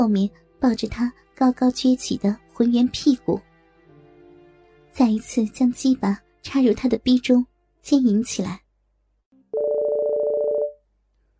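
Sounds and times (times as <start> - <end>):
speech: 0.0 - 3.5, 5.0 - 8.6
mobile phone ringtone from a handbag on the floor: 9.5 - 10.8.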